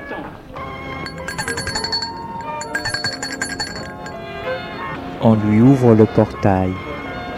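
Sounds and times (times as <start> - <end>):
doorbell ringing at a gate: 1.1 - 4.2
speech: 5.2 - 6.9.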